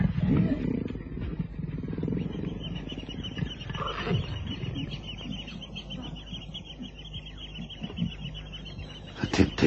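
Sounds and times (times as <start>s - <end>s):
leopard taking bait at dawn grunting: 0.0s - 6.0s
outdoor hum: 0.0s - 9.6s.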